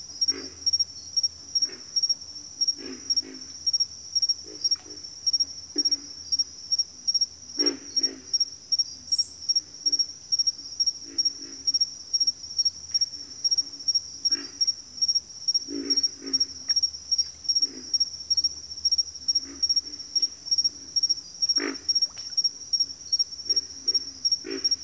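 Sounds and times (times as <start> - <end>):
shrill insect hum: 0.0 - 24.8
pig frogs grunting in a bayou: 0.2 - 0.8, 1.6 - 6.4, 7.5 - 8.6, 11.0 - 11.8, 13.0 - 24.8.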